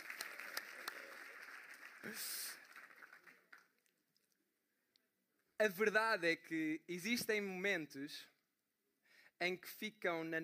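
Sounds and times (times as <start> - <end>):
audience applause: 0.0 - 3.8
speech: 2.0 - 2.5, 5.6 - 8.3, 9.4 - 10.4.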